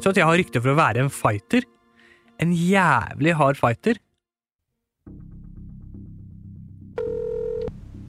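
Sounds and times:
speech: 0:00.0 - 0:01.8, 0:02.4 - 0:04.1
telephone dial tone: 0:07.0 - 0:07.7.

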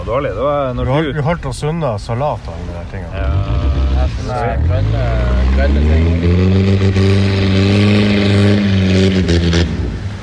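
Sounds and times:
speech: 0:00.1 - 0:09.8
boat motor revving as the boat is driven showing off: 0:03.1 - 0:10.2.

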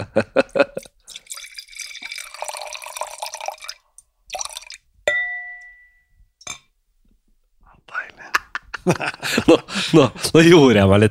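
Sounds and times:
laughter: 0:00.0 - 0:00.9, 0:08.2 - 0:10.6
speech: 0:00.2 - 0:00.6, 0:09.9 - 0:11.1
wine pouring into a glass: 0:00.8 - 0:04.9
glass clink: 0:05.1 - 0:06.7.

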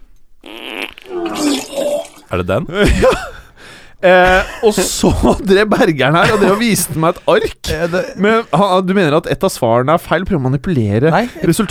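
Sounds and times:
long fart: 0:00.4 - 0:02.8
laughter: 0:02.2 - 0:08.5
speech: 0:02.3 - 0:03.4, 0:04.0 - 0:11.6.

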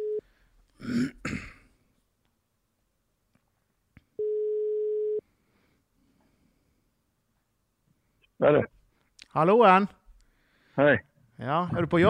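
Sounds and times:
phone ringback tone: 0:00.0 - 0:00.2, 0:04.2 - 0:05.2
throat clearing: 0:00.8 - 0:01.7
speech: 0:08.5 - 0:08.7, 0:09.3 - 0:10.0, 0:10.8 - 0:12.0.

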